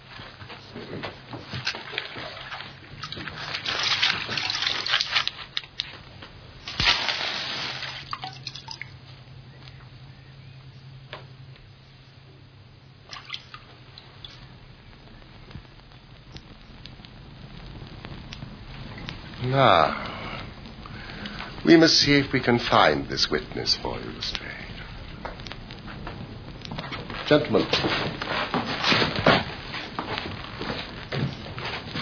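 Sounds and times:
burning straw crackling and popping: 0:00.0 - 0:32.0
water sprinkled on burning straw hissing and spattering: 0:01.5 - 0:05.9, 0:06.6 - 0:09.0, 0:13.0 - 0:16.6, 0:17.4 - 0:28.9
speech: 0:19.6 - 0:20.0, 0:21.6 - 0:24.9, 0:27.3 - 0:29.0.

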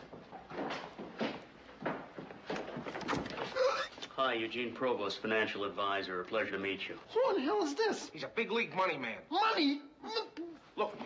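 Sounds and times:
door opening: 0:02.5 - 0:04.0
speech: 0:04.2 - 0:11.0.

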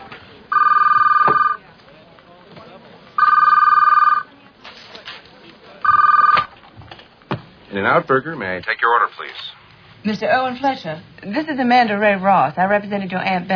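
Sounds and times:
telephone ringing with bright electronic trill: 0:00.5 - 0:01.6, 0:03.2 - 0:04.3, 0:05.8 - 0:06.5
speech: 0:07.8 - 0:13.5.

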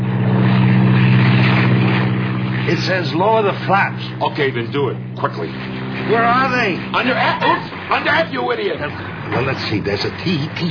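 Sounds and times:
propeller airplane engine droning in flight: 0:00.0 - 0:10.6
speech: 0:02.8 - 0:10.6.

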